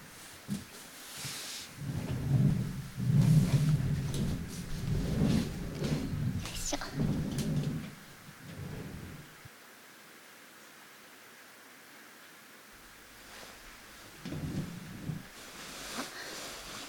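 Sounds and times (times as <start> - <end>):
low thunder rumbling: 1.8 - 9.5, 13.7 - 15.5
heavy rain: 1.8 - 10.2, 12.7 - 16.8.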